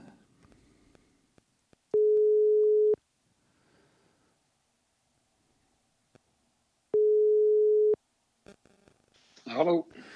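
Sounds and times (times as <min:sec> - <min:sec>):
telephone ringing tone of an outgoing call: 0:02.0 - 0:03.0, 0:07.0 - 0:08.0
speech: 0:09.6 - 0:09.9.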